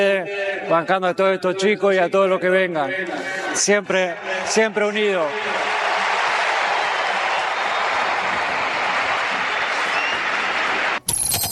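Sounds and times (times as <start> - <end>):
speech: 0.0 - 5.8
large crowd applauding: 4.4 - 11.1.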